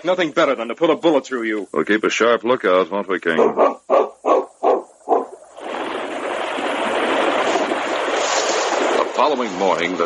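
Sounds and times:
speech: 0.0s - 4.2s, 9.2s - 10.0s
dog barking: 3.4s - 5.4s
swift river water rushing: 5.6s - 10.0s.

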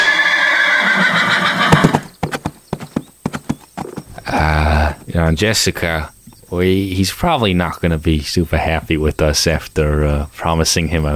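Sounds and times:
ridden horse whinnying loudly: 0.0s - 5.2s
clip-clopping hoofbeats of a ridden horse: 1.5s - 5.0s
speech: 5.2s - 11.1s.

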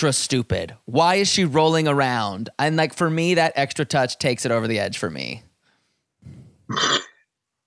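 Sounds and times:
speech: 0.0s - 5.5s, 6.2s - 7.1s
burp: 6.7s - 7.3s.

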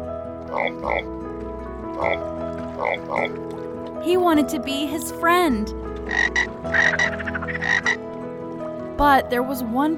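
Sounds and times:
chorus of several frogs croaking: 0.5s - 1.1s, 2.0s - 3.4s, 6.0s - 8.1s
speech: 0.5s - 1.2s, 1.9s - 8.0s, 9.0s - 9.9s.

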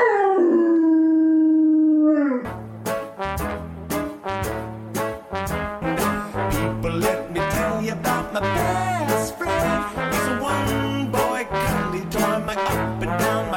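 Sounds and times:
dog howling: 0.0s - 2.5s
upbeat rhythmic music with a steady beat: 2.6s - 13.5s.

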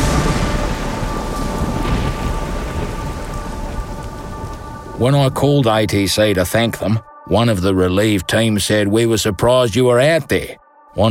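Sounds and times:
low rumble of thunder: 0.0s - 5.4s
heavy rain pouring at an airfield: 0.0s - 5.7s
speech: 5.0s - 11.0s.

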